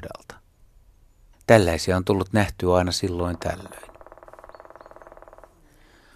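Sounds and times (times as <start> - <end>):
faint outdoor background: 0.0 - 6.1
speech: 1.5 - 3.9
black woodpecker call of loud ringing notes: 3.0 - 6.1.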